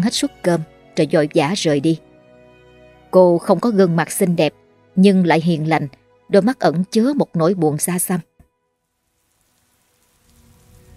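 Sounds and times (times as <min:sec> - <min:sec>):
speech: 0:00.0 - 0:02.1, 0:03.1 - 0:08.3
heavy rain pouring outside a small eatery: 0:09.0 - 0:10.9.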